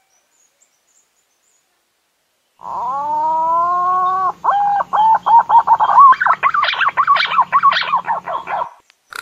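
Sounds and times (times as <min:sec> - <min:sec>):
green pigeon whistling song: 0:02.8 - 0:08.8.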